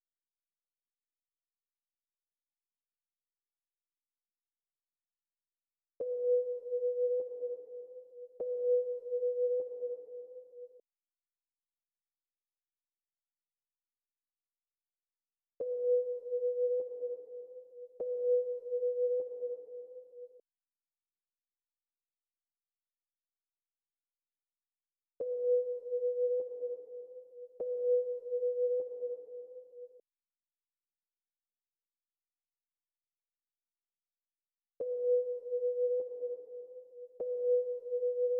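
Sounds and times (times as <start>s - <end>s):
Afrobeats sine key melody loop in E minor at 100 BPM: 6.0s - 10.8s, 15.6s - 20.4s, 25.2s - 30.0s, 34.8s - 38.3s.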